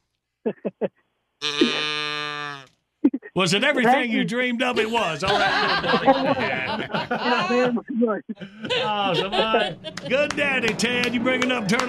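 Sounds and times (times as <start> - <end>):
speech: 0.4 - 1.9, 3.0 - 11.8
laughter: 0.5 - 0.9, 3.4 - 11.8
cow moo sound effect: 1.4 - 2.7.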